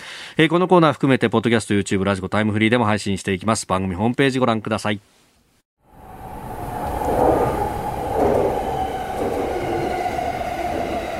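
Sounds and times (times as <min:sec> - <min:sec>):
speech: 0:00.4 - 0:05.2
commuter train running, heard from inside a carriage: 0:05.9 - 0:11.1.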